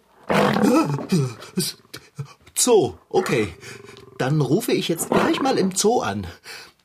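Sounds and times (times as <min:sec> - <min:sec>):
lion roaring: 0:00.2 - 0:02.0, 0:03.2 - 0:05.8
speech: 0:00.6 - 0:06.7.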